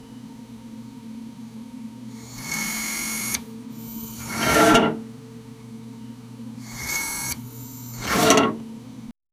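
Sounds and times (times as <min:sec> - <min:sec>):
mechanical disk sliding: 0:02.3 - 0:05.1, 0:06.7 - 0:08.7.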